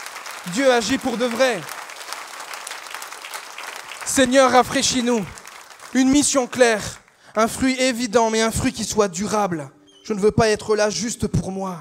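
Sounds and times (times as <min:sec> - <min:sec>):
crowd applauding: 0:00.0 - 0:07.6
speech: 0:00.4 - 0:01.8, 0:04.1 - 0:11.7.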